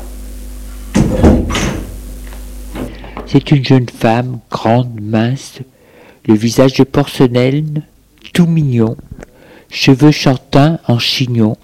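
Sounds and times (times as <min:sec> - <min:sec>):
low steady hum: 0:00.0 - 0:11.6
door swinging with a brief rustle: 0:00.9 - 0:01.9
speech: 0:03.2 - 0:09.1, 0:09.7 - 0:11.6.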